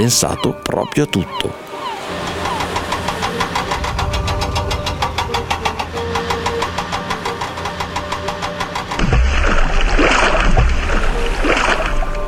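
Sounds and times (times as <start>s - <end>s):
speech: 0.0s - 1.7s
churning rushing sea water: 1.5s - 12.2s
mechanical harbour arm humming and clanking: 2.3s - 9.2s
loud splash of bus into sea: 9.0s - 12.2s.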